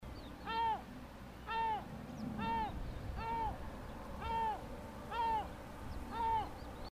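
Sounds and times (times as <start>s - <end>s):
Yellow-legged Gull: 0.4s - 3.6s, 4.2s - 5.5s, 6.1s - 6.6s.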